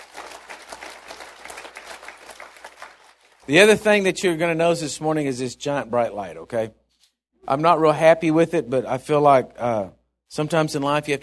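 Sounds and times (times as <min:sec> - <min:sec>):
audience applause: 0:00.0 - 0:03.5
speech: 0:03.5 - 0:06.8, 0:07.5 - 0:11.2.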